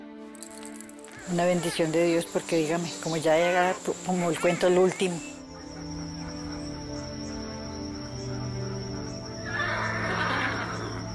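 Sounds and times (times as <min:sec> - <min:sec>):
speech: 0:01.3 - 0:05.3
horse neighing: 0:09.5 - 0:11.0.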